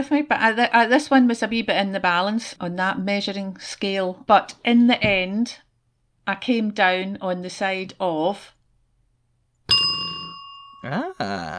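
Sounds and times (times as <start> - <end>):
speech: 0.0 - 5.6, 6.3 - 8.6, 10.8 - 11.5
person's voice imitating a bell ding: 9.7 - 11.5.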